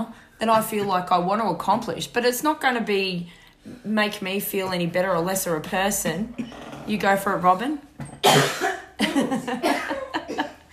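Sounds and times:
speech: 0.0 - 10.0
person in a harsh raspy coughing fit: 6.3 - 6.8, 8.2 - 10.7.

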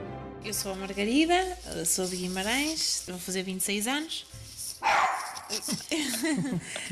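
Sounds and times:
speech: 0.5 - 4.4, 5.6 - 6.8
dog barking and yipping: 4.8 - 5.7
laughter: 5.5 - 6.8.

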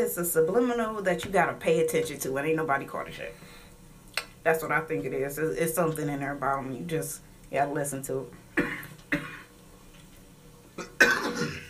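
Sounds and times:
speech: 0.0 - 3.6, 4.4 - 8.8
person on strong medication coughing: 8.6 - 9.5, 10.8 - 11.6.

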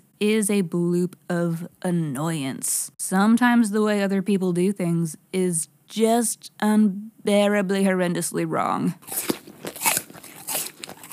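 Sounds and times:
speech: 0.2 - 9.4
loud crunchy chewing: 9.0 - 11.1.

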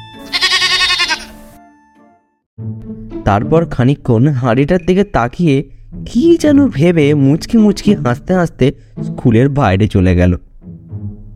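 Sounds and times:
goat bleating while being fed sweets: 0.2 - 1.4
speech: 2.9 - 10.5.

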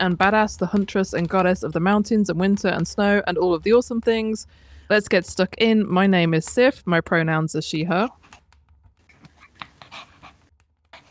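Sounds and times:
speech: 0.0 - 8.2
dog panting rapidly: 9.2 - 11.0.

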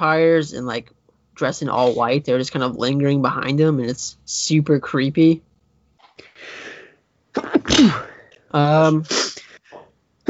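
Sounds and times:
speech: 0.0 - 5.5, 7.4 - 9.2
breathy inhale: 6.2 - 7.0
loud sneeze: 7.4 - 8.2, 8.8 - 9.5.

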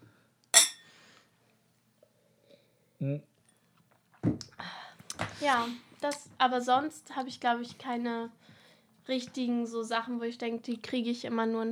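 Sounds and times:
glasses clinking in a toast: 0.6 - 0.9
speech: 3.0 - 3.3, 5.4 - 11.6.

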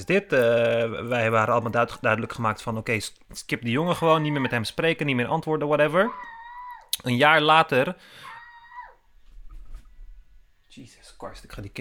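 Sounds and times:
speech: 0.0 - 6.4, 7.0 - 8.3, 10.8 - 11.7
child screaming: 5.9 - 7.0, 8.1 - 9.1.

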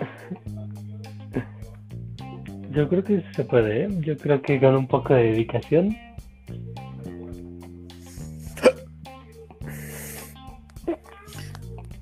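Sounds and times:
speech: 2.8 - 6.1
hiccups: 8.6 - 8.8.

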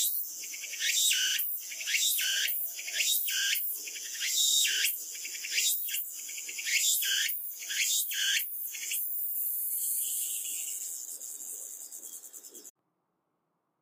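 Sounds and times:
tsukutsuku-boshi cicada calling: 0.0 - 12.7.

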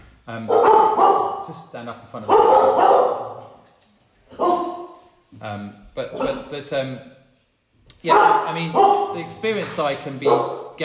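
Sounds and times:
speech: 0.3 - 3.4, 5.4 - 7.2, 8.0 - 10.8
dog barking and yelping: 0.5 - 1.5, 2.3 - 3.6, 4.3 - 5.0, 8.0 - 9.4, 10.2 - 10.8.

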